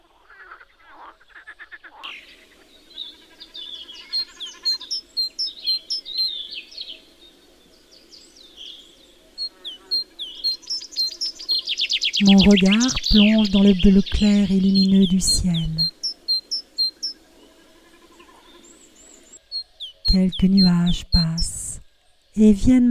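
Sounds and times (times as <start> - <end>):
frogs croaking in a neighbouring pond: 0.0 - 22.9
sparrows chirping outdoors: 2.0 - 21.8
cuckoo calling outdoors: 2.1 - 7.2, 8.4 - 21.6
chaffinch singing outdoors: 2.1 - 21.8
speech: 12.2 - 16.0, 20.2 - 21.6, 22.4 - 22.9.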